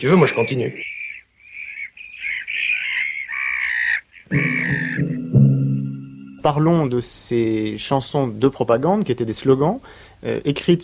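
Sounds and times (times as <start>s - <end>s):
speech: 0.0s - 1.0s, 6.4s - 10.8s
seagulls crying on the coast: 0.0s - 6.1s.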